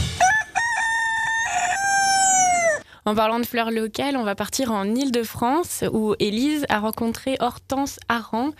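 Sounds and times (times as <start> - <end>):
rooster crowing: 0.1 - 2.9
speech: 3.1 - 8.5.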